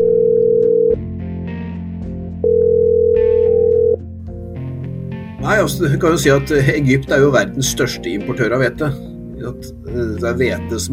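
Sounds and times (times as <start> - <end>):
steady telephone ringback tone of an outgoing call: 0.0 - 1.0, 2.4 - 4.0
soft music: 0.0 - 10.9
speech: 5.6 - 10.9.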